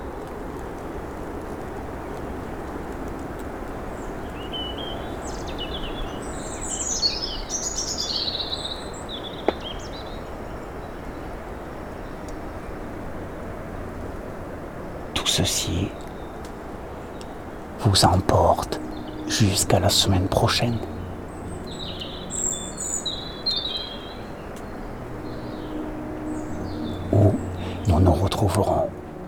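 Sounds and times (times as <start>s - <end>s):
birdsong: 0.0s - 29.2s
steady outdoor hiss at 1,400 metres altitude in sunshine: 0.0s - 29.2s
speech: 15.4s - 16.0s, 17.8s - 21.0s.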